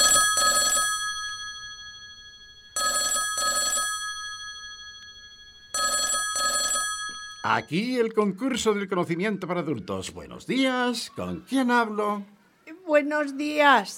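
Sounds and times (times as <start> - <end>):
telephone ringing with bright trilling double rings: 0.0 - 7.8
speech: 7.5 - 12.4, 13.0 - 13.9.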